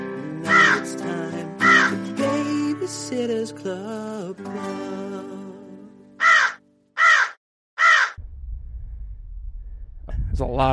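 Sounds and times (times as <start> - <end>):
harsh bird calls: 0.5 - 0.9, 1.6 - 2.0, 6.2 - 8.2
speech: 2.9 - 5.4, 10.4 - 10.7
low rumble: 8.2 - 10.7.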